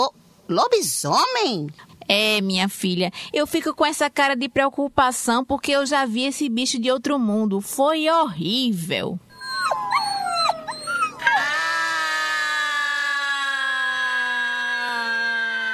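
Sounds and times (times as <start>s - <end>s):
speech: 0.0s - 9.2s
family dog yelping: 9.3s - 12.0s
family dog howling: 9.3s - 15.6s.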